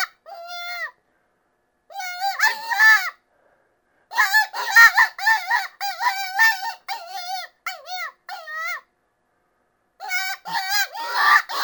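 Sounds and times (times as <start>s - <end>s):
Cottontail rabbit distress cries: 0.0s - 1.0s, 1.9s - 3.2s, 4.1s - 8.8s, 10.0s - 11.6s.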